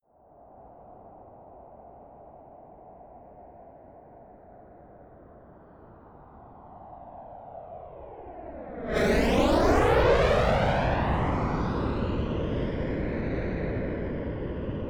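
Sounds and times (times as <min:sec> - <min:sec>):
F-22 Raptor military jet flying by fast and close: 0:08.5 - 0:14.8.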